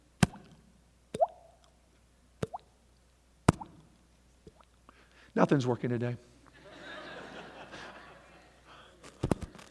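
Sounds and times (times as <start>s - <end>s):
water dripping: 0.4s - 1.8s, 2.4s - 2.7s, 4.5s - 4.8s
speech: 5.4s - 6.4s
laughter: 6.6s - 9.0s.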